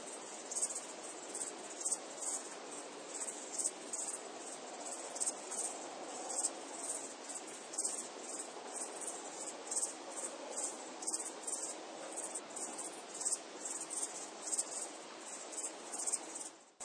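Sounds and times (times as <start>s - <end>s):
crickets chirping: 0.0s - 16.8s
even background hiss: 0.0s - 16.8s.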